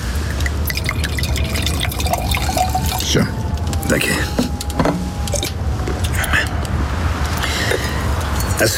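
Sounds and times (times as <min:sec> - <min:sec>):
faint low hum: 0:00.0 - 0:08.7
liquid poured into a glass: 0:00.3 - 0:03.1
speech: 0:03.1 - 0:04.9, 0:08.6 - 0:08.7.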